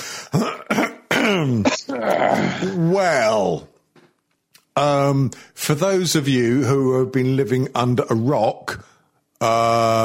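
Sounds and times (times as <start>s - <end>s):
person giving an expectant cough and clearing throat: 0.3s - 2.8s
speech: 1.3s - 3.7s, 4.8s - 10.0s.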